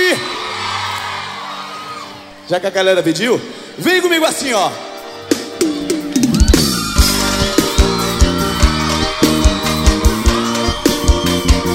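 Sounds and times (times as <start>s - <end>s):
concert crowd shouting and cheering: 0.0s - 2.5s, 5.6s - 11.7s
speech: 2.5s - 5.4s.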